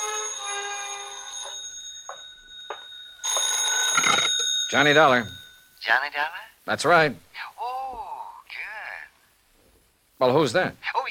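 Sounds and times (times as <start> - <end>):
telephone bell ringing in an apartment: 0.0 - 5.7
speech: 4.7 - 7.5, 10.2 - 11.0.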